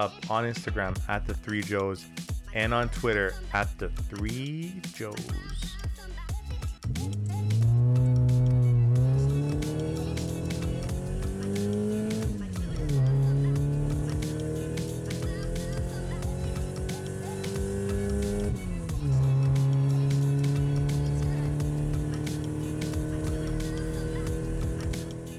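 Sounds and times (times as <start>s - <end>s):
speech: 0.0s - 5.7s
racing car engine roaring through gear shifts: 6.9s - 25.3s.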